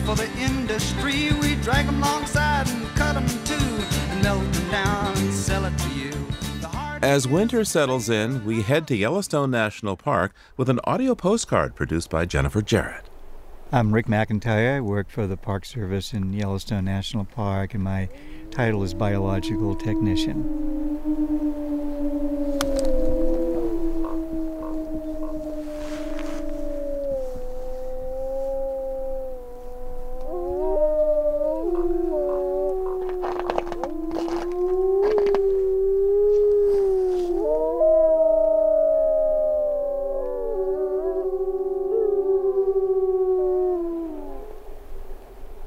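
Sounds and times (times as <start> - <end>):
speech: 0.1 - 6.3, 7.0 - 13.1, 13.7 - 22.4
wolves howling in chorus: 17.8 - 44.8
wolves yipping and barking: 18.1 - 38.6.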